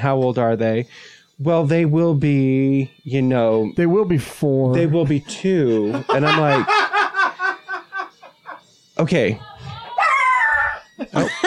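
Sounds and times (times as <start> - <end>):
speech: 0.0 - 6.9, 9.0 - 9.5, 11.0 - 11.4
laughter: 4.7 - 8.6, 10.8 - 11.4
dog howling whine: 9.9 - 11.0.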